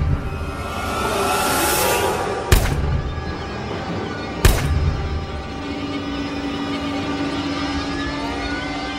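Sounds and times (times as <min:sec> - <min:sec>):
steady rumbling drone: 0:00.0 - 0:08.9
pistol gunshots: 0:02.5 - 0:03.2, 0:04.4 - 0:05.0.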